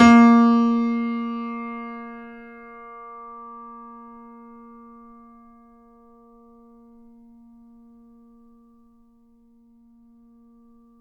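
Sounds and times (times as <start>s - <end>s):
fortissimo A#2 grand piano note: 0.0s - 5.9s.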